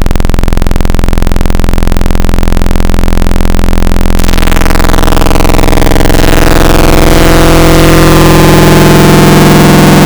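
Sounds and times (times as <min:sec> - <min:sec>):
FM saw wavetable synth tone: 0:00.1 - 0:10.0.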